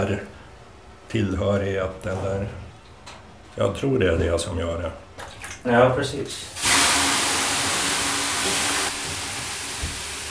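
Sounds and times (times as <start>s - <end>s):
speech: 0.0s - 0.4s, 1.1s - 2.6s, 3.6s - 5.0s, 5.6s - 6.6s
water splashing onto hot sauna stones: 6.3s - 10.2s
hissing steam from hot sauna stones: 6.4s - 10.2s.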